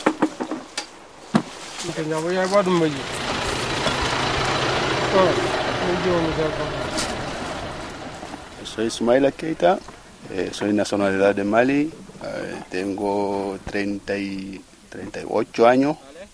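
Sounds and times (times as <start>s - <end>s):
sharp knocks: 0.0s - 1.6s
farm tractor diesel engine rumbling: 0.0s - 15.3s
speech: 1.8s - 3.2s, 5.1s - 7.2s, 8.7s - 16.1s.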